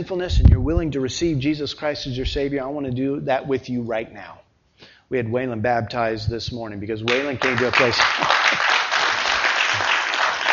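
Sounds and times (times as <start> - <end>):
speech: 0.0 - 8.4
applause and standing ovation in a church after a baptism: 7.1 - 10.5.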